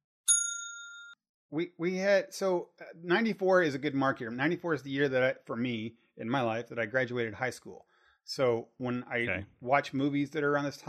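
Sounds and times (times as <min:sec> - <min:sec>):
bright metallic bell ding as spoiler warning: 0:00.3 - 0:01.2
speech: 0:01.5 - 0:10.8.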